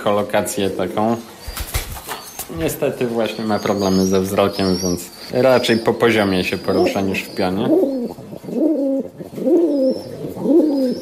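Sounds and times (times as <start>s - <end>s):
speech: 0.0s - 1.6s, 2.4s - 7.9s
older pigeon cooing in a low bass voice: 2.4s - 10.9s.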